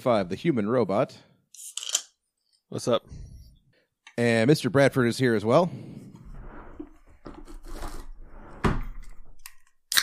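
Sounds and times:
speech: 0.0s - 1.3s, 2.7s - 3.3s, 4.2s - 6.2s
desk drawer sliding and rattling: 6.0s - 9.4s.

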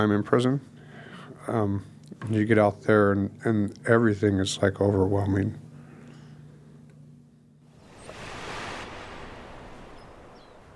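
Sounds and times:
speech: 0.0s - 0.8s, 1.5s - 5.6s
small waves washing up on the shore beside a prison: 7.7s - 10.7s.

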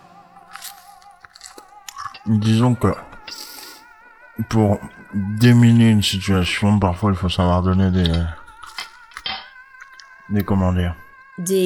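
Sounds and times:
crunching bite into bread with jam: 0.4s - 2.3s, 8.0s - 10.2s
wet chewing of bread with jam: 0.5s - 2.3s, 8.0s - 10.5s
speech: 2.2s - 3.1s, 4.4s - 8.4s, 10.3s - 11.6s.

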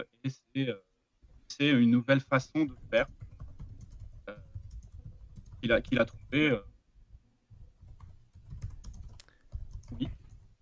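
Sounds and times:
speech: 0.0s - 0.9s, 1.6s - 3.2s, 5.6s - 6.7s, 9.9s - 10.2s
computer keyboard typing clicks: 2.7s - 6.3s, 7.6s - 10.5s.

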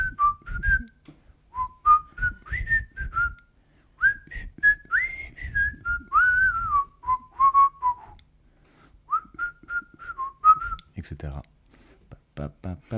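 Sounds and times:
person whistling a bouncy melody: 0.0s - 8.2s, 9.1s - 10.9s.

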